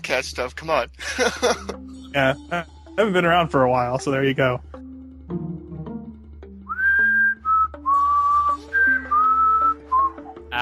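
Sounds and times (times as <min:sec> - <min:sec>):
speech: 0:00.1 - 0:05.4
laughter: 0:01.0 - 0:01.8
loud human whistling of a wandering melody: 0:06.7 - 0:10.4.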